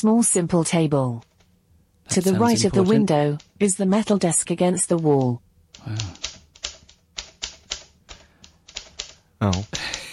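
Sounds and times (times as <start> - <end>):
speech: 0.0 - 1.3, 2.1 - 6.3, 9.4 - 10.0
typewriter key strikes: 6.1 - 10.0.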